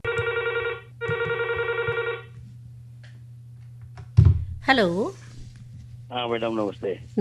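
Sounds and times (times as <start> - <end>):
telephone ringing for an incoming call to a radio phone-in programme: 0.0 - 2.3
faint low hum: 0.0 - 7.2
speech: 4.7 - 5.2, 6.1 - 7.2.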